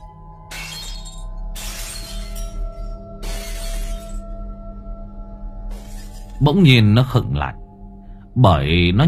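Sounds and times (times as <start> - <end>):
chipped earthenware bowls thrown and smashing: 0.0 - 4.3
steady low hum: 0.0 - 9.0
speech: 6.4 - 7.6, 8.4 - 9.0.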